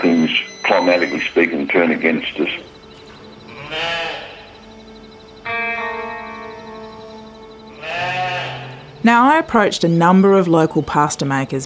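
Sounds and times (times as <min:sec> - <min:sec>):
speech: 0:00.3 - 0:02.7, 0:09.0 - 0:11.6
sheep bleating: 0:03.4 - 0:04.6, 0:05.4 - 0:07.0, 0:07.7 - 0:08.9.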